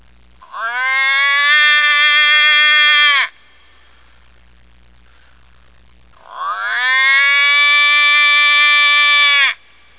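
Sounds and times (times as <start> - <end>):
toad: 0.4 - 3.4, 6.2 - 9.9.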